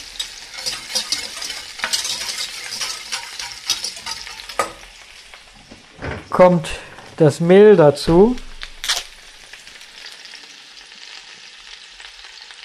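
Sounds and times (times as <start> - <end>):
whisk stirring melting butter in a pot: 0.0 - 4.8
butter melting in a pot: 0.0 - 6.0, 8.4 - 12.6
speech: 6.4 - 8.5.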